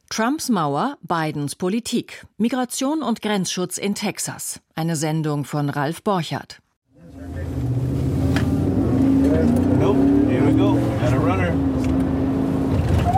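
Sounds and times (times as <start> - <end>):
speech: 0.2 - 6.6
border police car engine accelerating in Texas: 7.0 - 13.1.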